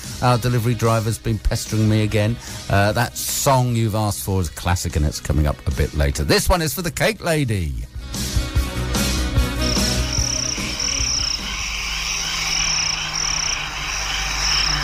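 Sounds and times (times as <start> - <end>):
speech: 0.2 - 8.2
crickets buzzing in a high steady trill: 9.5 - 14.8.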